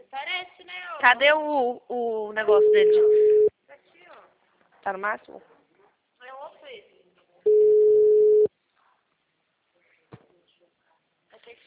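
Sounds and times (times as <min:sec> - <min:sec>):
speech: 0:00.4 - 0:03.2, 0:04.8 - 0:05.5
telephone line tone during an incoming call: 0:02.6 - 0:03.5, 0:07.5 - 0:08.5.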